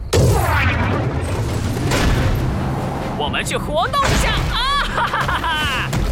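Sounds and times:
loud booming explosion: 0:00.1 - 0:02.7
speech: 0:03.3 - 0:05.5
laughter: 0:04.3 - 0:05.9.

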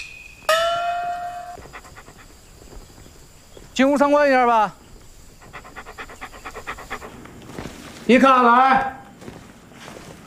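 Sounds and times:
dog panting: 0:01.2 - 0:03.9, 0:04.7 - 0:08.0
speech: 0:03.8 - 0:04.8, 0:08.1 - 0:09.0.

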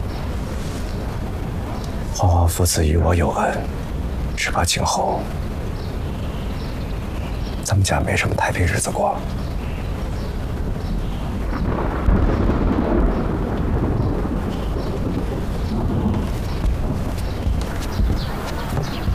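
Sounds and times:
rain: 0:00.0 - 0:19.1
speech: 0:02.2 - 0:05.5, 0:07.7 - 0:09.6
rolling thunder: 0:10.5 - 0:19.1.

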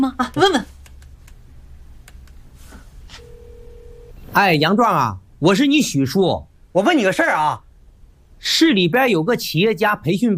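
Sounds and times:
phone ringing tone: 0:03.2 - 0:04.3
speech: 0:04.4 - 0:07.6, 0:08.4 - 0:10.3.

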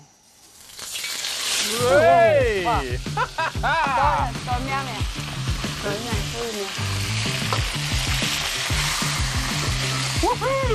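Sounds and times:
food sizzling in a smoking-hot wok: 0:00.0 - 0:10.7
person exclaiming excitedly: 0:01.6 - 0:03.0, 0:10.2 - 0:10.7
speech: 0:01.7 - 0:08.0, 0:10.2 - 0:10.7
laughter: 0:01.8 - 0:04.3.

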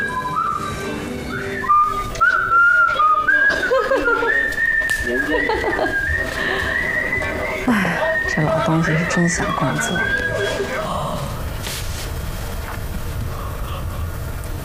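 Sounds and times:
person whistling a simple melody: 0:00.0 - 0:08.7, 0:09.4 - 0:10.6
steady low hum: 0:00.0 - 0:14.6
laughter: 0:02.8 - 0:11.4, 0:13.2 - 0:14.3
speech: 0:08.8 - 0:10.6.

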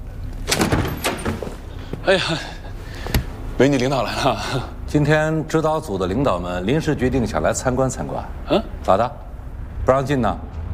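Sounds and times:
door being pulled open with rattling scrape: 0:00.3 - 0:02.0
speech: 0:02.1 - 0:02.6, 0:03.6 - 0:09.2, 0:09.8 - 0:10.5.

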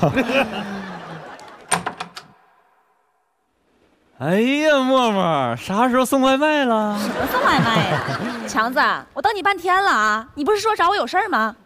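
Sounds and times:
speech: 0:00.0 - 0:00.9, 0:04.2 - 0:11.6
laughter: 0:00.0 - 0:01.7, 0:06.9 - 0:08.9
door latch and handle clicks: 0:01.5 - 0:02.4.

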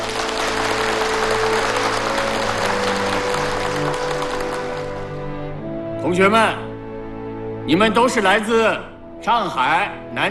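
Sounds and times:
sizable crowd applauding heartily: 0:00.0 - 0:05.5
speech: 0:06.1 - 0:06.6, 0:07.7 - 0:10.2.

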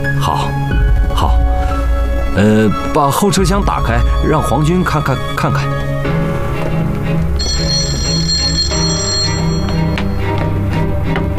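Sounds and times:
dense steady background of music or ambient noise: 0:00.0 - 0:11.3
speech: 0:02.4 - 0:05.8
telephone ringing with a bright trilling bell tone: 0:07.4 - 0:10.6.

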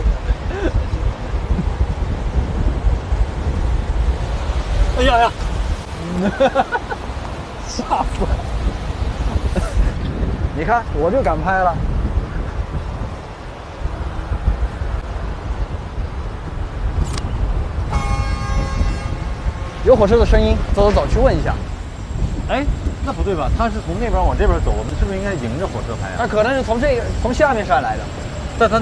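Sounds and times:
several people talking and laughing: 0:00.0 - 0:02.0, 0:05.0 - 0:10.7, 0:22.5 - 0:28.7
gusty wind: 0:00.0 - 0:28.7
train horn blast: 0:17.9 - 0:19.9.

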